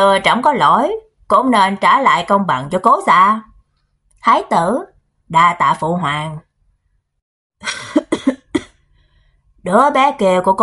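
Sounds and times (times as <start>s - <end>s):
speech: 0.0s - 3.5s, 4.2s - 6.5s, 9.6s - 10.6s
ailing elderly emperor dry harsh coughing: 7.9s - 8.8s.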